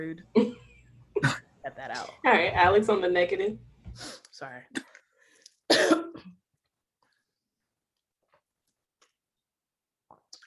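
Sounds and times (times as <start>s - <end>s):
speech: 0.0s - 0.4s, 1.2s - 4.9s
person coughing: 1.2s - 1.4s, 5.7s - 6.4s.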